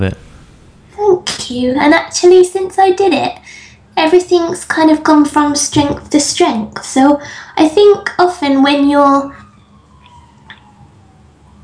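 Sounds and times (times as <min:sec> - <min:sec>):
speech: 0:00.0 - 0:00.2, 0:01.1 - 0:09.4
low hum: 0:00.0 - 0:11.6
faint emergency vehicle siren wailing outside: 0:07.1 - 0:11.6.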